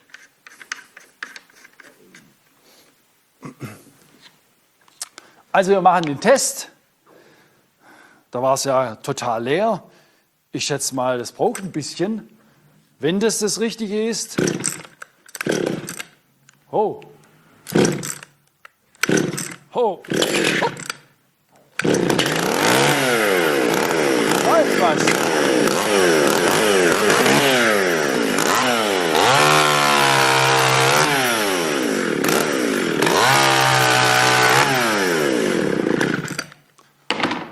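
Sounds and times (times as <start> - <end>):
speech: 5.6 - 6.8, 8.4 - 12.4, 13.0 - 14.8, 16.8 - 17.1
chainsaw running as a test during a church service: 14.4 - 16.1, 17.7 - 18.3, 19.0 - 21.0, 21.8 - 36.6.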